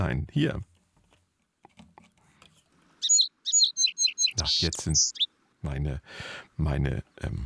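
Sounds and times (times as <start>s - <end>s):
speech: 0.0s - 0.7s, 4.4s - 7.4s
sparrows chirping: 3.0s - 5.3s.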